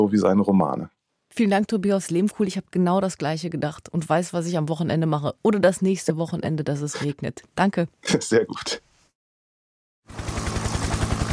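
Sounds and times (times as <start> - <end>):
speech: 0.0 - 8.8
police helicopter rotors thumping over the city: 10.1 - 11.3.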